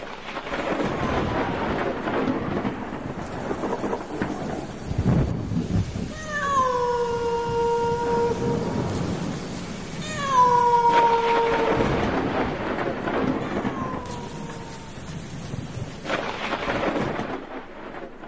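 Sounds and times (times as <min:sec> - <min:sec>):
deep rumble of thunder during a storm: 0:00.0 - 0:18.2
steady rain pouring outside a run-down house during a storm: 0:00.0 - 0:18.2
long wailing falling tones: 0:06.1 - 0:15.3.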